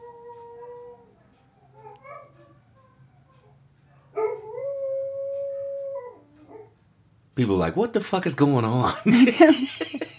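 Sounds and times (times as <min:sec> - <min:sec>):
dogs howling: 0:00.0 - 0:06.8
low hum: 0:00.0 - 0:10.1
speech: 0:07.4 - 0:10.1
laughter: 0:08.9 - 0:10.1.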